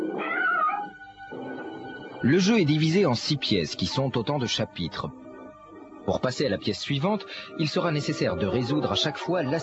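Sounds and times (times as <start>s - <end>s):
cat yowling in puzzle video game footage: 0.1s - 1.8s, 8.5s - 9.6s
speech: 2.2s - 5.2s, 6.1s - 9.6s.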